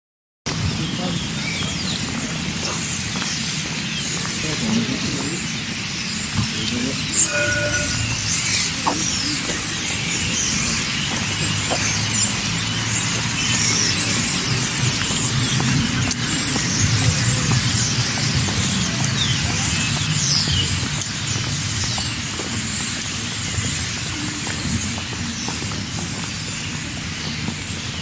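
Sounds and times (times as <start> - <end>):
many birds chirping with overlapping calls: 0.5 - 27.9
clearer whistle: 7.1 - 8.2.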